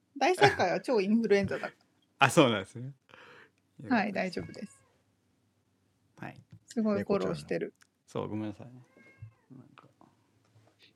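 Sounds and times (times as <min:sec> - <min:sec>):
speech: 0:00.2 - 0:03.0, 0:03.8 - 0:04.8, 0:06.2 - 0:08.9
adopted pet cat meowing: 0:08.9 - 0:09.5.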